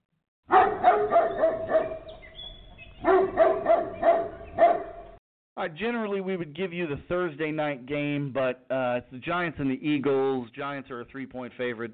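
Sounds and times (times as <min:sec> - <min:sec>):
dog barking: 0:00.5 - 0:02.1, 0:03.0 - 0:05.1
speech: 0:05.6 - 0:11.9.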